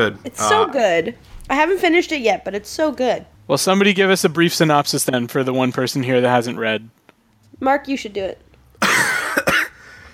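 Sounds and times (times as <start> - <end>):
speech: 0.0 - 7.0, 7.6 - 8.5
person coughing: 8.8 - 9.8.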